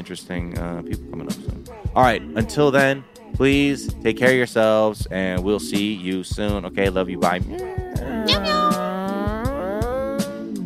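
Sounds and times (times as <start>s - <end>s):
speech: 0.0s - 8.6s
cat meowing: 7.6s - 10.5s.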